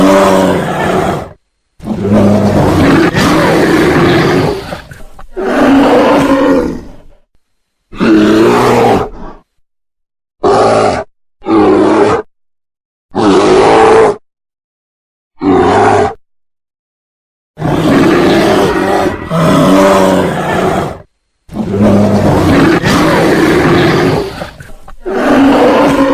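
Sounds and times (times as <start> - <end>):
brown bear roaring: 0.0 - 7.2, 7.9 - 9.5, 10.4 - 12.3, 13.1 - 14.2, 15.4 - 16.2, 17.6 - 26.1.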